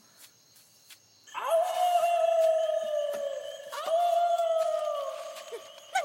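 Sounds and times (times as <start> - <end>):
wolf-like animal howling near a sugarcane field in Okinawa: 1.3 - 5.9.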